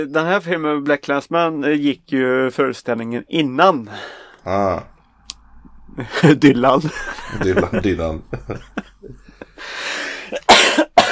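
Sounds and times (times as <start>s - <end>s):
speech: 0.0s - 4.9s, 6.0s - 10.6s
faint vocal sounds: 4.4s - 5.0s
laughter: 6.0s - 10.5s
person letting out long breathy rasp: 9.2s - 10.4s
person coughing harshly: 10.2s - 11.1s.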